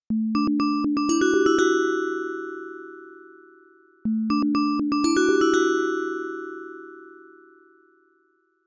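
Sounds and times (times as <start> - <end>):
Christmas ringtone melody: 0.4 - 2.1, 4.3 - 6.4.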